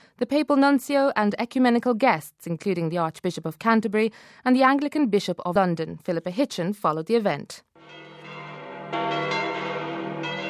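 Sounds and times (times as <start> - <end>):
speech: 0.2 - 8.0
Westminster Cathedral bells pealing at midday for the reception of the new Archbishop: 7.8 - 10.4.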